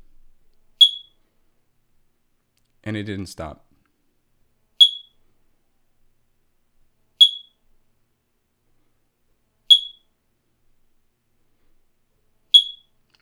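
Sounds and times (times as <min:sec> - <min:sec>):
smoke detector mounted high on a wall chirping: 0:00.8 - 0:01.2, 0:04.8 - 0:05.2, 0:07.2 - 0:07.6, 0:09.7 - 0:10.1, 0:12.6 - 0:12.9
speech: 0:02.8 - 0:03.7.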